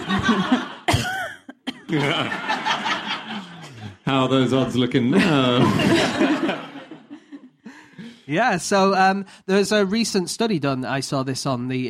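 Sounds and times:
laughter: 0:00.0 - 0:08.3
speech: 0:00.1 - 0:00.7, 0:01.9 - 0:02.6, 0:04.1 - 0:06.7, 0:08.3 - 0:11.8
person coughing in short sharp bursts: 0:00.9 - 0:02.0.

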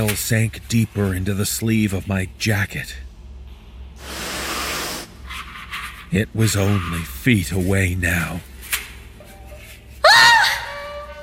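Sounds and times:
speech: 0:00.0 - 0:03.0, 0:06.1 - 0:08.5
woman shrieking in fright: 0:10.0 - 0:11.2.

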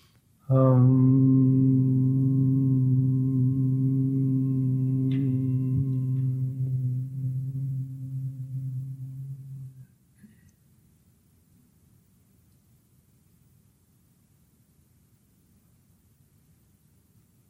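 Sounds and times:
person humming during guided breathing exercise: 0:00.5 - 0:09.8.

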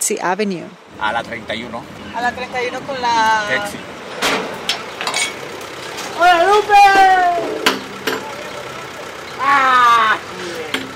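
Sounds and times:
speech: 0:00.1 - 0:04.5, 0:06.2 - 0:07.6, 0:09.4 - 0:10.5
truck engine idling: 0:00.8 - 0:10.9
metallic clanks: 0:01.2 - 0:08.9.

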